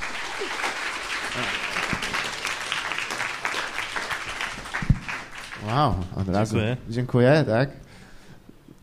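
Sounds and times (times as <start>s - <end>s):
audience applauding an arriving guest: 0.0s - 6.6s
speech: 1.4s - 1.6s, 5.7s - 7.8s.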